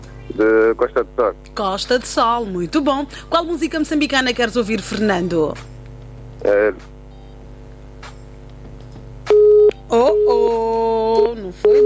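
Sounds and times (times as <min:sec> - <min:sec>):
speech: 0:00.3 - 0:05.7, 0:06.4 - 0:06.9
telephone line tone after a lost call on a radio call-in line: 0:09.3 - 0:10.5, 0:11.6 - 0:11.8.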